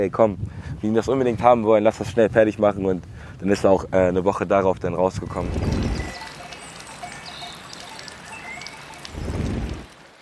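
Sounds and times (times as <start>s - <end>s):
speech: 0.0s - 6.1s
water pouring and trickling: 5.2s - 10.2s.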